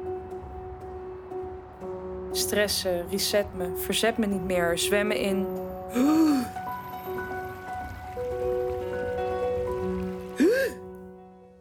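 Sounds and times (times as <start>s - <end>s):
sustained tonal music: 0.0s - 11.5s
speech: 2.3s - 6.6s
steady rain pattering: 2.3s - 11.0s.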